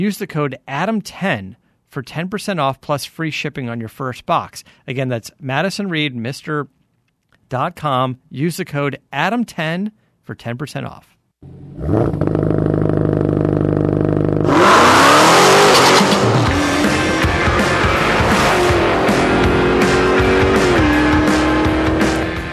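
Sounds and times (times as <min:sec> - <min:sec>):
speech: 0:00.0 - 0:06.8, 0:07.5 - 0:12.5
loud car engine idling and revving through gear changes: 0:11.4 - 0:22.5.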